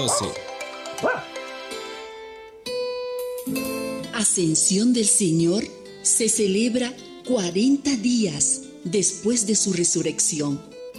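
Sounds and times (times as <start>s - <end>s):
dog barking: 0.0s - 0.4s, 1.0s - 1.4s
speech: 0.0s - 1.3s, 3.5s - 10.9s.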